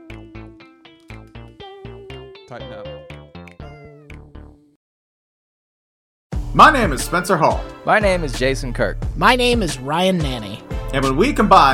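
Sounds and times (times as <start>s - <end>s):
speech: 2.5s - 3.1s, 6.6s - 11.7s
gang of alley cats meowing: 3.6s - 4.1s.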